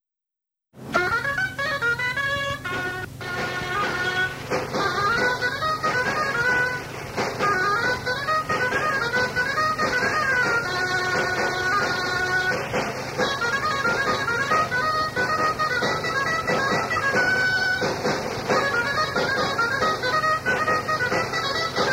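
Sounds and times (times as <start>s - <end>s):
traditional procession dance music in Valladolid: 0.8s - 21.9s.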